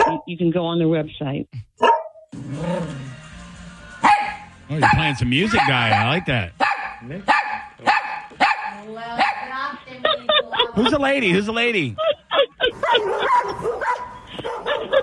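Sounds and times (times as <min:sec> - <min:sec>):
dogs barking in sharp yaps: 0:00.0 - 0:00.3, 0:01.8 - 0:02.3, 0:04.0 - 0:09.6, 0:12.6 - 0:15.0
speech: 0:00.2 - 0:03.2, 0:04.7 - 0:08.0, 0:08.8 - 0:12.4
laughter: 0:09.8 - 0:15.0.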